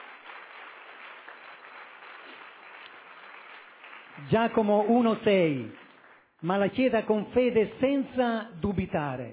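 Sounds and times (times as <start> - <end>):
crowd applauding in a reverberant room: 0.0 - 6.3
speech: 4.2 - 5.8, 6.4 - 9.3.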